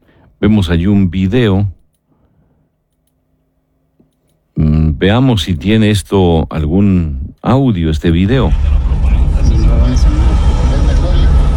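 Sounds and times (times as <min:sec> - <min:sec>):
speech: 0:00.4 - 0:01.8, 0:04.6 - 0:09.0
indistinct voices murmuring: 0:08.5 - 0:11.5
road traffic rumble played from a video: 0:08.5 - 0:11.5.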